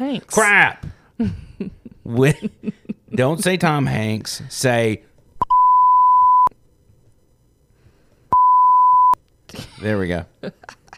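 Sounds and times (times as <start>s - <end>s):
speech: 0.0s - 5.1s, 9.6s - 10.8s
flat high-pitched censor beeps: 5.4s - 6.5s, 8.3s - 9.2s.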